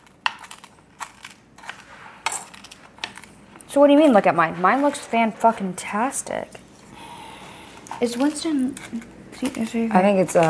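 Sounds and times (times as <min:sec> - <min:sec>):
crust mixture crushed and pressed down: 0:00.0 - 0:06.7, 0:07.8 - 0:10.4
speech: 0:03.7 - 0:06.6, 0:08.0 - 0:10.4.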